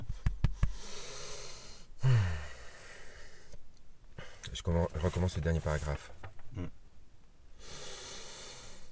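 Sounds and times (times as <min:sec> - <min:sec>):
loud breathing of a person reading aloud: 0:00.7 - 0:03.6, 0:07.6 - 0:08.9
speech: 0:04.6 - 0:06.8.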